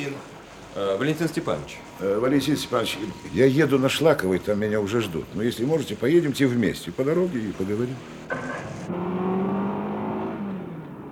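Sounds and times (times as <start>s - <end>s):
speech: 0.0s - 9.1s
car engine revving and pulling away: 7.4s - 11.1s.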